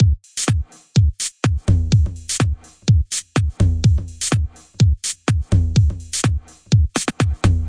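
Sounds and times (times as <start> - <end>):
house music toms with delay: 0.0 - 7.6.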